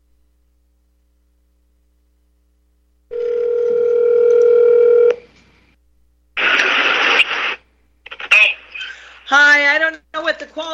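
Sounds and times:
phone ringing tone through a phone speaker: 3.1 - 5.2
harsh static-like noise: 6.3 - 9.9.

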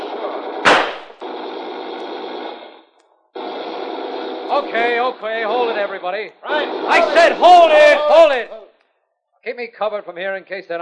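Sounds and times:
gunfire from machine guns in a shootout: 0.0 - 5.8, 6.5 - 8.0
speech: 4.5 - 8.6, 9.4 - 10.8.

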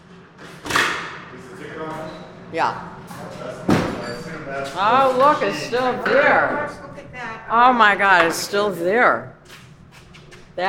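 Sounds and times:
ticket booth door scraping creak as it swings: 2.0 - 10.6
speech: 2.5 - 3.4, 4.5 - 6.8, 7.5 - 9.4
stuck ticket booth door thud as it is forced open: 3.6 - 4.0.

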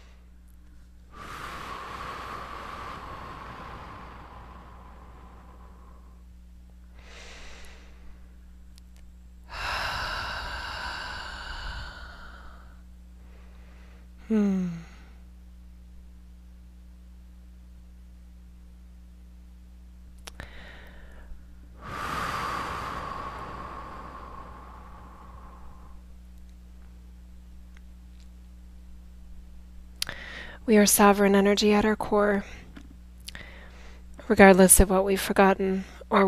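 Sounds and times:
low steady hum: 0.0 - 36.2
deep breathing in through the nose and out through the mouth: 1.1 - 8.4, 9.5 - 15.2, 20.3 - 26.1, 30.0 - 30.6, 32.4 - 34.1
speech: 14.3 - 14.7, 30.7 - 32.6, 34.3 - 36.2.

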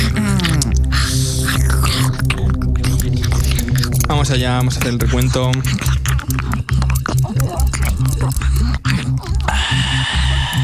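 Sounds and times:
woman imitating someone gulping water: 0.0 - 4.0, 6.2 - 10.6
speech: 4.2 - 5.9.

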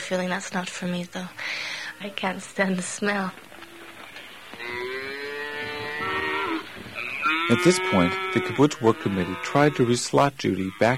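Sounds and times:
speech: 0.1 - 3.4, 7.5 - 10.9
single cow mooing: 4.5 - 10.9.

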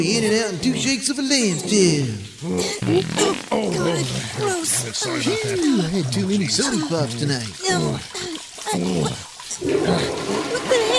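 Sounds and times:
speech: 0.0 - 10.9
toilet flushing: 0.0 - 10.9
person groaning and vocalizing: 1.6 - 9.2.

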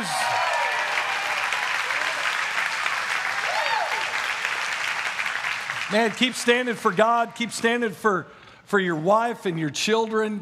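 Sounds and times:
faint cheers and whoops: 0.0 - 2.6, 3.3 - 4.3
audience applauding: 0.0 - 7.3
speech: 5.9 - 10.4.

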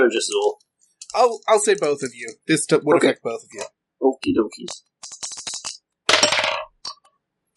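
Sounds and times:
speech: 0.0 - 5.4
dice rattling and clattering across a hard tabletop: 5.4 - 6.8.

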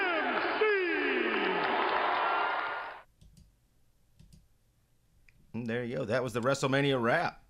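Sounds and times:
crowd applause: 0.0 - 3.0
speech: 5.6 - 7.4.

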